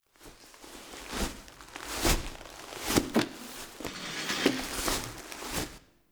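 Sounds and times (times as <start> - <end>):
crawling foley: 1.0 - 5.8.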